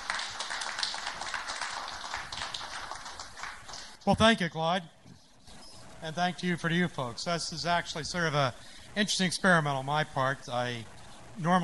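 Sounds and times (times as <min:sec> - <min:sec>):
crowd applause: 0:00.0 - 0:04.0
speech: 0:04.0 - 0:05.0, 0:06.0 - 0:11.6.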